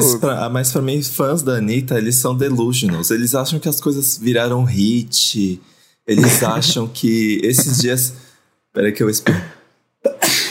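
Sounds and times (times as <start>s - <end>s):
speech: 0.0s - 9.6s
sneeze: 9.3s - 10.4s.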